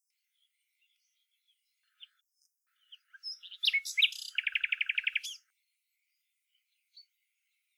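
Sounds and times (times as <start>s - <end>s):
common nightingale Luscinia megarhynchos singing: 0.8s - 5.5s.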